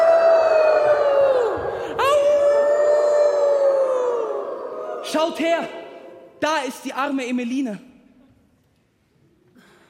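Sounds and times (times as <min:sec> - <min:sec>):
crowd of children imitating wolf howls: 0:00.0 - 0:05.1
speech: 0:05.1 - 0:05.8, 0:06.4 - 0:07.9.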